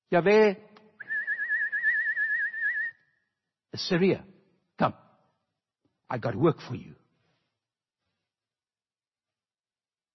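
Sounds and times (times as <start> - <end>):
speech: 0.1 - 0.7, 3.8 - 5.0, 6.1 - 7.0
person whistling: 1.0 - 3.2.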